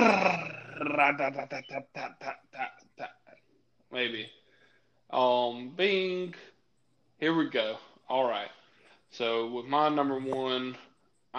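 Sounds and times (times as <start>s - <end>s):
evenly spaced vocal beats: 0.0s - 3.0s
speech: 1.0s - 2.4s, 3.9s - 4.4s, 5.1s - 6.5s, 7.2s - 11.3s.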